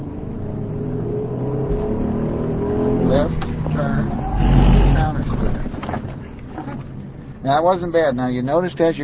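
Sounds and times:
car engine accelerating: 0.0 - 7.0
speech: 7.5 - 9.0.

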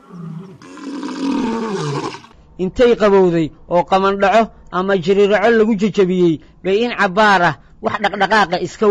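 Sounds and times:
lion roaring: 0.0 - 2.3
speech: 2.6 - 8.8.

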